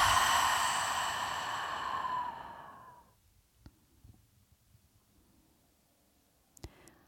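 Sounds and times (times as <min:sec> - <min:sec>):
voiced exhale sigh during a relaxation breathing exercise: 0:00.0 - 0:03.1
faint small clicks: 0:06.5 - 0:07.0.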